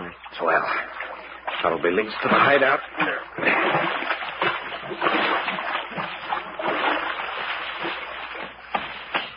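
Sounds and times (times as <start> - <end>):
feet wading through muddy creek water at twilight: 0.2 - 9.3
speech: 0.4 - 1.0, 1.6 - 5.4.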